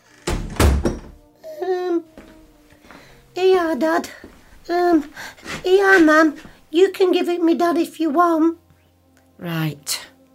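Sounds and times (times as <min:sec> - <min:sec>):
squeaky tonal creak: 0:00.0 - 0:01.1
wooden door thudding shut: 0:00.0 - 0:01.2
speech: 0:03.6 - 0:08.6, 0:09.4 - 0:10.0.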